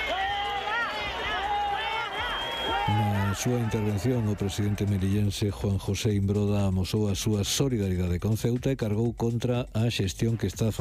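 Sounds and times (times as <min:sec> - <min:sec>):
large crowd booing loudly: 0:00.0 - 0:05.4
speech: 0:02.9 - 0:10.7.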